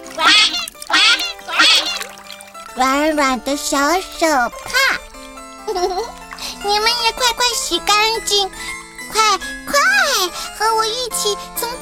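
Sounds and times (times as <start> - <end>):
rubber duck squeaking at bath time: 0.1 - 2.2
speech: 2.8 - 4.8, 5.8 - 11.8.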